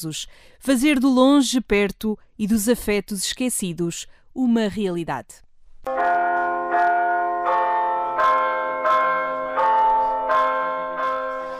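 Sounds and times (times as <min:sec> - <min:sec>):
speech: 0:00.0 - 0:06.2
village parish church bell in Alvoco das Várzeas Portugal ringing the hour: 0:05.9 - 0:11.5.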